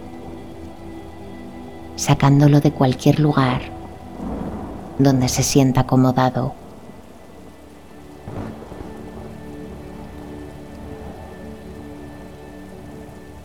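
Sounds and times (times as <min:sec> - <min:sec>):
heavy rain from a summer thunderstorm: 0:00.0 - 0:13.4
thunder rumble: 0:01.9 - 0:13.4
speech: 0:02.0 - 0:03.8, 0:05.0 - 0:06.6
thunderclap: 0:03.4 - 0:11.4.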